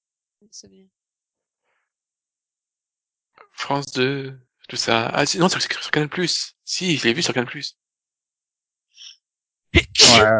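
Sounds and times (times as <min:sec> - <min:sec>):
speech: 0:00.4 - 0:01.0, 0:03.5 - 0:07.8, 0:10.0 - 0:10.3
loud sharp sneeze: 0:09.8 - 0:10.3.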